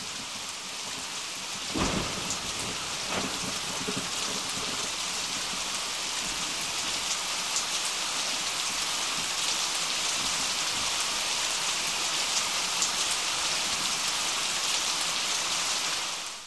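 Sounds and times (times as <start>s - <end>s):
heavy rain falling: 0.0s - 16.4s
thunder cracks: 1.7s - 5.2s.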